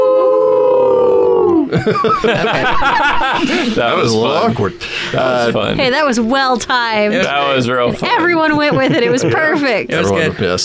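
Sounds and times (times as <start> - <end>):
people howling together: 0.0 - 4.1
people laughing: 1.6 - 5.6, 7.1 - 10.6
speech: 1.7 - 10.6
people chattering: 2.2 - 10.6.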